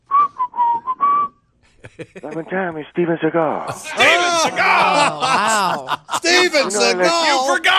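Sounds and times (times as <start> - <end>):
person whistling a short tune: 0.1 - 1.4
laughter: 1.7 - 2.5, 3.7 - 7.7
speech: 2.0 - 7.7.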